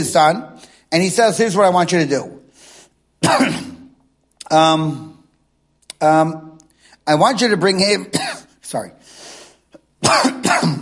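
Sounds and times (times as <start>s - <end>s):
speech: 0.0s - 2.4s, 3.2s - 3.6s, 4.5s - 5.2s, 6.0s - 6.5s, 7.1s - 9.2s, 10.0s - 10.8s
person coughing harshly: 3.2s - 3.9s, 8.1s - 8.6s, 10.0s - 10.8s.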